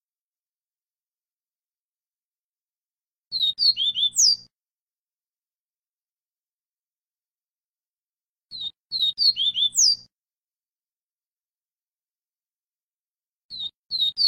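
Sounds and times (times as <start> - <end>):
double-collared seedeater singing high slurred whistled notes: 3.3 - 4.5, 8.5 - 10.1, 13.5 - 14.2.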